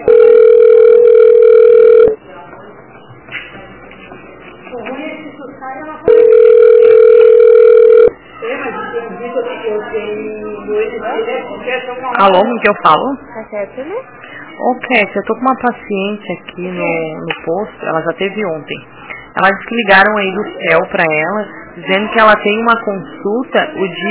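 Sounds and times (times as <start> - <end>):
ringback tone of a call to a dental specialty clinic: 0.0 - 2.2, 6.1 - 8.2
speech: 12.2 - 24.0.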